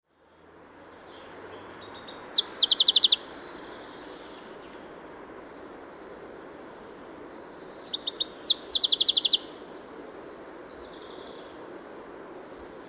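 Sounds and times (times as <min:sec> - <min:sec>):
soft background hiss: 0:00.1 - 0:12.8
common chaffinch Fringilla coelebs singing: 0:00.7 - 0:05.4, 0:06.9 - 0:12.8.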